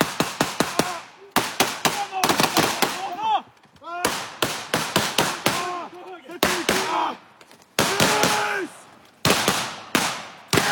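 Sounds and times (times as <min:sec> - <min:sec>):
blank ammunition gunshots fired by soldiers during a military exercise: 0:00.0 - 0:03.2, 0:04.0 - 0:07.2, 0:07.8 - 0:10.6
people shouting: 0:00.6 - 0:04.3, 0:05.2 - 0:08.9.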